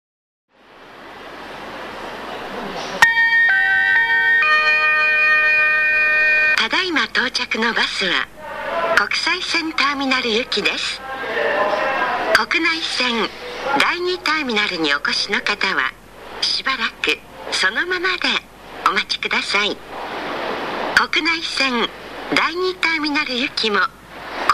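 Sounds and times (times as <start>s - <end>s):
automated arrival announcement at Haneda Airport free shuttle bus stop: 2.0s - 19.9s, 21.0s - 24.5s
four-tone arrival chime at Haneda Airport bus stop: 3.0s - 6.6s.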